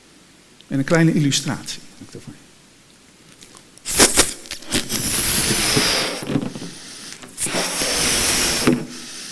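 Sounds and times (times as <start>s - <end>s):
speech: 0.7s - 2.4s
balloon blown up by mouth: 3.9s - 9.3s.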